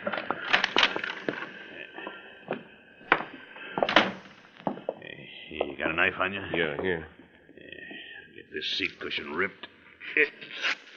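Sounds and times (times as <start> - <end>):
door lock sharp metallic clicks and rattles: 0.0 - 1.5, 3.1 - 4.2
dull door thunks: 3.1 - 4.2
speech: 5.9 - 7.2, 8.6 - 10.8.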